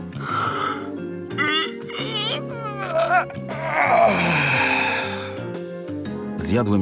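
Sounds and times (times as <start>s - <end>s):
soft steady musical backing: 0.0s - 6.8s
person yawning and stretching with groaning vocal slides: 0.2s - 5.5s
speech: 3.1s - 4.4s, 6.5s - 6.8s.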